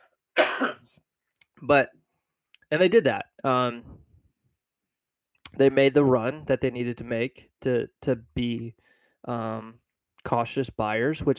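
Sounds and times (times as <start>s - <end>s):
person coughing: 0.4s - 0.8s
throat-clearing: 0.4s - 0.8s
speech: 0.6s - 1.0s, 1.6s - 2.0s, 2.7s - 4.0s, 5.5s - 11.3s.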